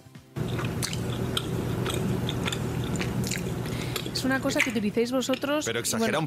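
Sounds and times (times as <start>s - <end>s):
ASMR biting and chewing deodorant-shaped food: 0.4s - 6.1s
wet crunches and crackly snaps: 0.5s - 4.7s
speech: 4.2s - 6.2s.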